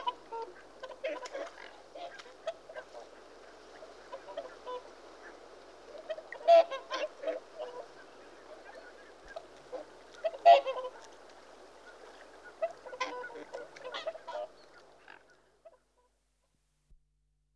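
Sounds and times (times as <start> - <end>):
Whooper swan giving honking calls: 0.0 - 3.2, 6.0 - 8.0, 8.6 - 11.2, 11.9 - 15.3.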